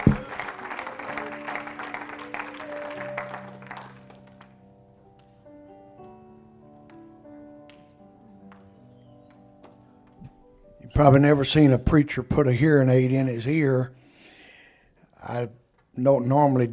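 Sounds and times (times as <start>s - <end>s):
congregation clapping hands in a church service: 0.0s - 5.4s, 7.7s - 10.2s
sustained organ or keyboard tones: 0.0s - 11.4s
speech: 11.0s - 14.0s, 15.3s - 16.7s.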